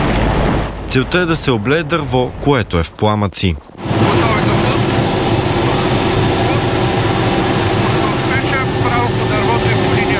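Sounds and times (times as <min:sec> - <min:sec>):
speech: 0:00.9 - 0:04.2
Cougar military helicopter in flight with engine whine and rotor noise: 0:03.6 - 0:10.1.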